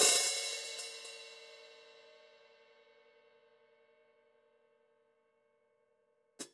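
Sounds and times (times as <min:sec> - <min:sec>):
open hi-hats: 0:00.0 - 0:01.4.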